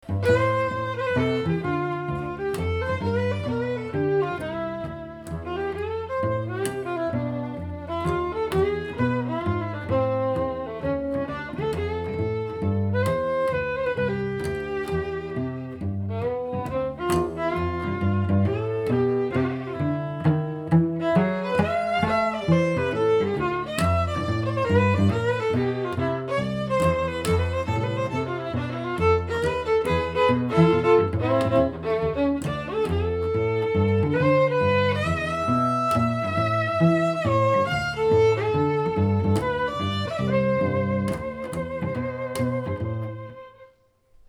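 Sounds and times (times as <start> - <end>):
string duo playing: 0.0 - 44.2.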